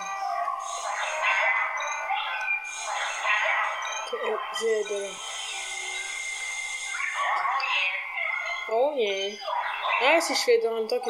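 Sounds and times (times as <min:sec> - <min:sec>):
dog howling and whining: 0:00.0 - 0:06.1, 0:07.0 - 0:08.7
speech: 0:04.2 - 0:05.3, 0:08.7 - 0:11.0.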